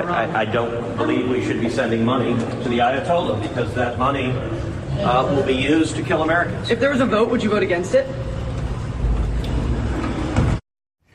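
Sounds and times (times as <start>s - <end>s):
speech: 0.0s - 8.3s
elevator doors sliding shut: 8.5s - 10.6s.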